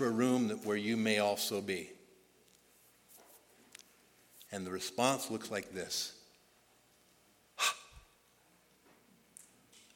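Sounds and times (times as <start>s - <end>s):
speech: 0.0s - 2.0s, 4.5s - 6.2s, 7.6s - 7.8s
sharp breathy gasp of awe: 7.6s - 8.1s.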